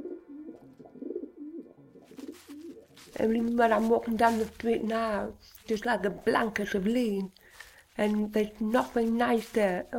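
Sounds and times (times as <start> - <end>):
wood pigeon cooing: 0.0 - 3.1
faint rustle: 2.0 - 9.9
speech: 3.1 - 7.4, 8.0 - 9.9.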